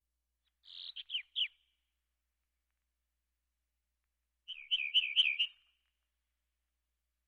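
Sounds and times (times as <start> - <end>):
house wren song: 0.4 - 1.9, 4.4 - 6.0.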